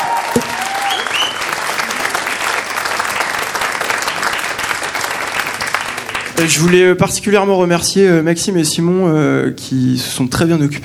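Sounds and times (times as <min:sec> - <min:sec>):
whistles and cheers from concert audience: 0:00.0 - 0:02.3
full concert audience applauding: 0:00.0 - 0:07.0
speech: 0:06.4 - 0:10.8.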